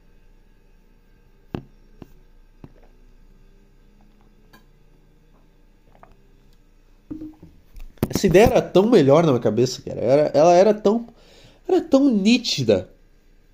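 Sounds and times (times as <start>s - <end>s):
person swallowing water: 2.6s - 3.0s, 5.9s - 6.2s, 7.1s - 7.6s
cup or bottle clicking and knocking while handled: 7.1s - 8.6s
speech: 8.2s - 12.9s.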